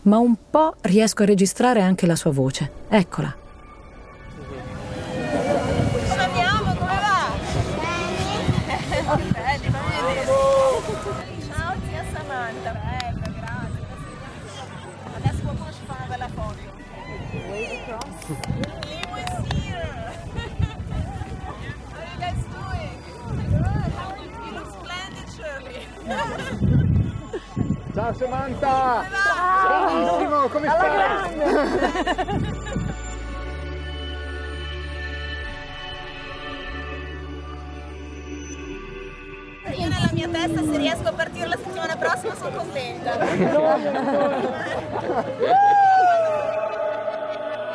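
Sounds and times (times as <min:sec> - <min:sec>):
speech: 0:00.0 - 0:03.4, 0:28.1 - 0:32.8, 0:40.3 - 0:45.8
people talking loudly: 0:04.1 - 0:31.9, 0:39.7 - 0:45.4
gusty wind buffeting the microphone outdoors: 0:04.3 - 0:29.2, 0:39.7 - 0:43.6
laughter: 0:05.0 - 0:07.0, 0:08.3 - 0:09.5, 0:19.8 - 0:21.8, 0:25.6 - 0:27.7, 0:29.3 - 0:33.2, 0:41.8 - 0:47.7
people shouting: 0:09.9 - 0:11.2, 0:29.0 - 0:31.3, 0:45.4 - 0:47.7.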